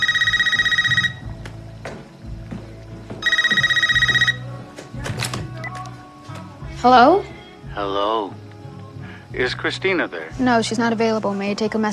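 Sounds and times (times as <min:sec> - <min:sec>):
telephone ringing: 0:00.0 - 0:01.4, 0:03.2 - 0:04.6
speech: 0:06.8 - 0:08.4, 0:09.3 - 0:11.9.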